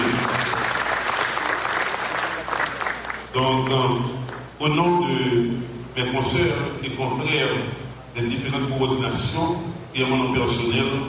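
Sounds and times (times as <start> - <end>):
audience applause for losing election candidates: 0.0 - 3.3
speech: 3.4 - 11.0.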